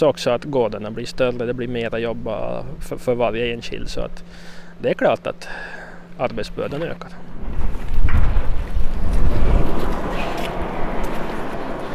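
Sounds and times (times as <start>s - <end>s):
speech: 0.0s - 7.3s
cold wind blowing outdoors on a farm buffeting the microphone: 7.2s - 11.9s.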